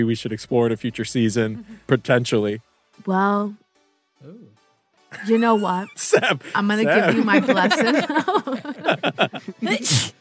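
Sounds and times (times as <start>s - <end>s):
speech: 0.0s - 3.6s, 4.2s - 10.2s
laughter: 5.1s - 9.8s
person sneezing: 9.7s - 10.2s.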